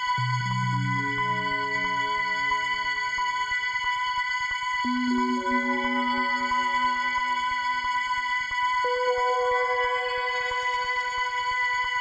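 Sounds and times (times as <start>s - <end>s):
sparkle drone: 0.2s - 3.8s, 4.8s - 11.8s.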